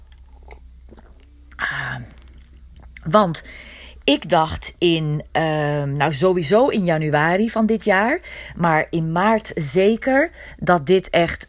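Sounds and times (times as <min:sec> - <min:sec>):
faint mouth and cup noises: 0:00.0 - 0:03.1
person taking a close-up slurping sip of coffee: 0:00.2 - 0:03.0
speech: 0:03.0 - 0:11.4.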